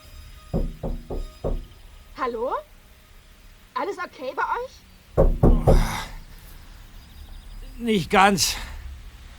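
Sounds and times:
dull knocks on a car door from outside: 0:00.5 - 0:01.8, 0:05.2 - 0:06.1
speech: 0:02.2 - 0:02.7, 0:03.8 - 0:06.0, 0:07.8 - 0:08.7.

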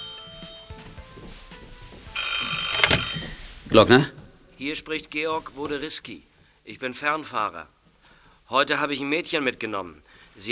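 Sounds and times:
telephone bell ringing with a bright metallic trill: 0:00.0 - 0:01.0, 0:02.1 - 0:03.6
speech: 0:03.7 - 0:07.8, 0:08.5 - 0:10.5.

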